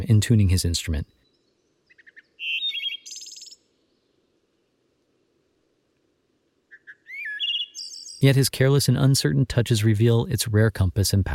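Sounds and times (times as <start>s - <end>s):
speech: 0.0s - 1.2s, 8.2s - 11.3s
songbird singing whistles and trills: 0.0s - 5.1s, 6.6s - 10.4s
steady low insect hum: 1.2s - 8.3s.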